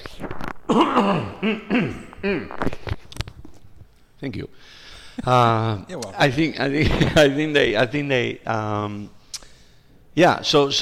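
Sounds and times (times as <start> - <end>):
person coughing harshly: 0.7 - 2.7
speech: 0.7 - 2.8, 4.2 - 9.2, 10.2 - 10.7.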